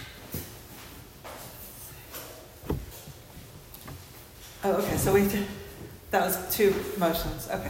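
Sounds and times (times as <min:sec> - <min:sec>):
shuffling: 0:00.6 - 0:05.9
door swinging shut with a dull thud: 0:02.6 - 0:03.1
soft knocks: 0:02.6 - 0:04.1
speech: 0:04.7 - 0:05.6, 0:06.1 - 0:07.6.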